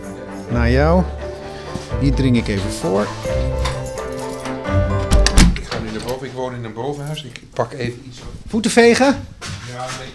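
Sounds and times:
speech: 0:00.5 - 0:01.2, 0:02.0 - 0:03.6, 0:06.0 - 0:10.1
door of a home being opened: 0:02.5 - 0:06.2
key rattling and clicking in a lock: 0:03.4 - 0:06.2.

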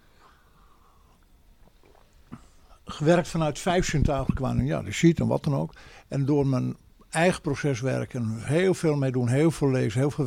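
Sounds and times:
sipping water: 0:00.8 - 0:03.3
soft wet mouth sounds: 0:01.2 - 0:02.6
short gulp of water: 0:01.6 - 0:02.7
speech: 0:03.0 - 0:10.2.

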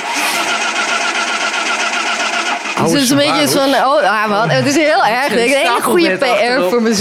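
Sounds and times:
old car engine sputtering through its start: 0:00.0 - 0:03.8
laughter: 0:02.8 - 0:06.9
speech: 0:02.8 - 0:06.9.

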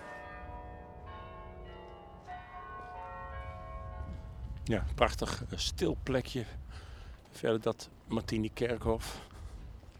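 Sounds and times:
church tower bells ringing: 0:00.0 - 0:05.7
speech: 0:04.7 - 0:06.6, 0:07.4 - 0:09.3.

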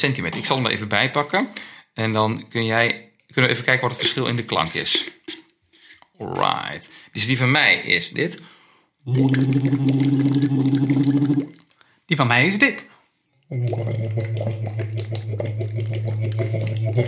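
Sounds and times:
speech: 0:00.0 - 0:05.4, 0:06.2 - 0:12.9, 0:13.5 - 0:17.0
bubbles blown through a straw into water: 0:09.1 - 0:11.7, 0:13.5 - 0:17.0.

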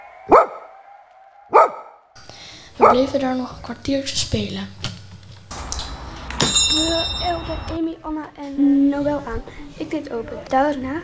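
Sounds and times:
dog barking loudly: 0:00.3 - 0:00.8, 0:01.5 - 0:02.0, 0:02.6 - 0:03.8
speech: 0:02.8 - 0:04.8, 0:06.8 - 0:11.0.

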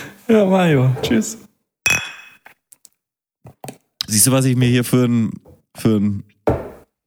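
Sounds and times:
speech: 0:00.3 - 0:01.5, 0:04.1 - 0:06.6
two glasses clinking in a toast: 0:00.9 - 0:02.5
soft knocks and taps: 0:06.5 - 0:06.8.

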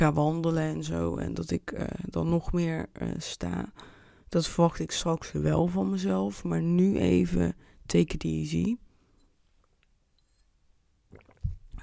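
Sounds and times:
speech: 0:00.0 - 0:08.8
sipping water: 0:11.1 - 0:11.8.

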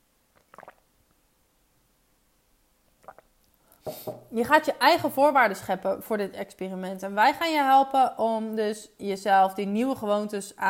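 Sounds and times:
person sipping and swallowing water: 0:00.3 - 0:00.9, 0:03.0 - 0:04.3
wet mouth noise: 0:00.3 - 0:00.9, 0:03.0 - 0:04.3
speech: 0:03.8 - 0:10.6.

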